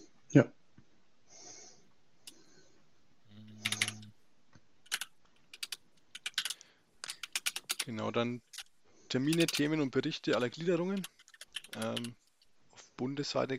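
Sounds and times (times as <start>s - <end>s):
speech: 0.3s - 0.6s, 7.9s - 12.2s, 13.0s - 13.5s
typing on a computer keyboard during a meeting: 3.5s - 4.1s, 4.9s - 7.9s, 9.3s - 12.4s.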